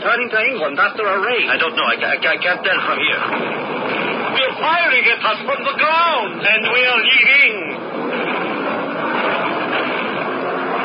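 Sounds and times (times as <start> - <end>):
propeller aircraft engine droning in flight: 0.0 - 10.8
speech: 0.1 - 3.9, 4.6 - 7.6.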